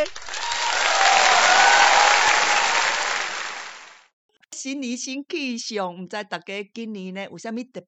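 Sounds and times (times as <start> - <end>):
applause from a group: 0.0 - 4.1
speech: 4.8 - 7.8.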